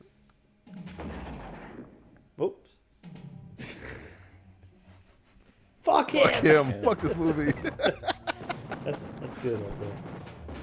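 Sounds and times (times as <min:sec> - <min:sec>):
video game explosion: 0:00.9 - 0:02.2, 0:07.0 - 0:10.6
speech: 0:02.4 - 0:02.8, 0:05.9 - 0:08.2, 0:08.8 - 0:10.4
laughter: 0:03.6 - 0:09.7.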